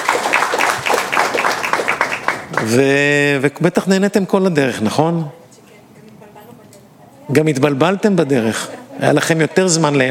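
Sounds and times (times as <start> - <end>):
audience applause: 0.0 - 3.1
speech: 2.6 - 5.4, 7.3 - 10.0.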